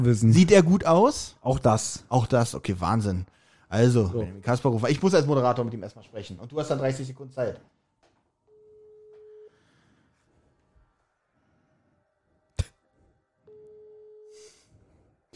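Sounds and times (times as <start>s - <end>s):
speech: 0.0s - 7.7s
telephone ringback tone, call not answered: 8.5s - 9.5s, 13.5s - 14.4s.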